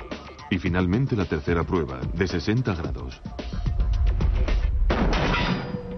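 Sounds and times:
speech: 0.5s - 3.6s
gunfire striking an inclined steel armor plate: 4.9s - 5.8s.

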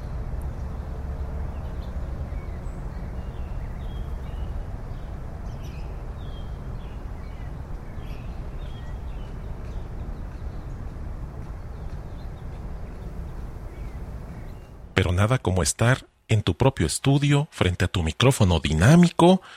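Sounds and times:
constant low rumble and bustle of human noises at dawn: 0.0s - 15.4s
speech: 15.0s - 19.5s.

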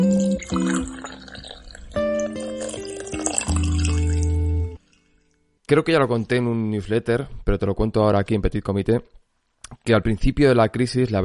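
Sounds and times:
coffee pouring into a cup: 0.0s - 4.4s
speech: 5.7s - 9.2s, 9.8s - 11.2s.

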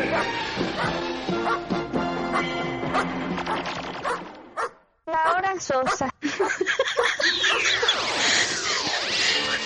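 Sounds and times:
dog barking: 0.1s - 1.7s, 2.3s - 6.0s
speech: 5.6s - 6.1s
laughter: 6.2s - 9.6s.

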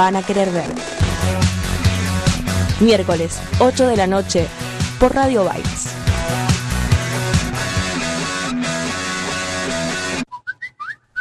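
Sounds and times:
speech: 0.0s - 1.6s, 2.8s - 6.4s
loud busy radio music: 0.0s - 10.2s
bright whistled notes like a phone notification tone: 10.3s - 11.1s.

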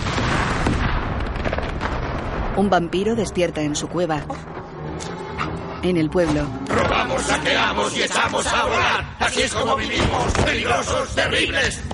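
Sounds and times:
firecrackers exploding: 0.0s - 2.6s
speech: 2.6s - 5.1s, 5.8s - 11.9s.

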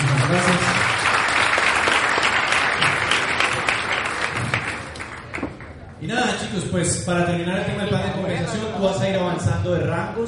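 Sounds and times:
audience applause: 0.0s - 5.9s
speech: 0.3s - 0.8s, 6.4s - 10.2s.

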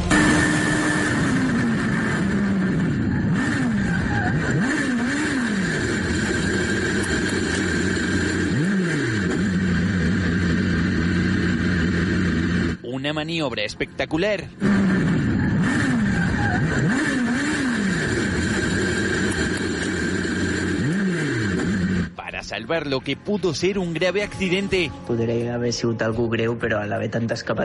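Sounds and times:
Super Formula race car engine revving at high speed: 0.1s - 12.8s, 14.3s - 22.2s
speech: 13.1s - 14.8s, 22.5s - 27.6s.

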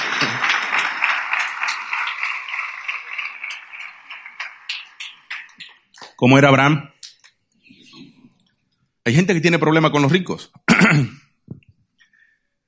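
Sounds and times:
crowd applause: 0.0s - 5.8s
speech: 6.2s - 6.9s, 9.1s - 11.2s.

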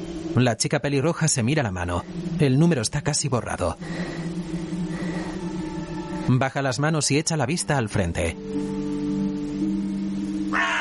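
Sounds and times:
steady low drone: 0.0s - 10.7s
speech: 0.4s - 4.3s, 6.3s - 8.8s
harsh raspy crow caw: 10.4s - 10.7s.

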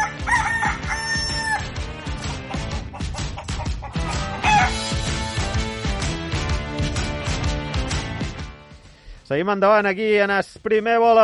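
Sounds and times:
rooster crowing: 0.0s - 1.7s, 4.3s - 4.9s
busy full musical backing: 0.0s - 9.0s
speech: 9.3s - 11.2s.

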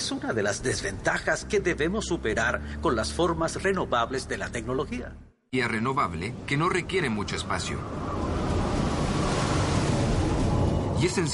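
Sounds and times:
speech: 0.1s - 8.1s, 11.0s - 11.3s
steady roar of ocean surf: 6.4s - 11.3s.

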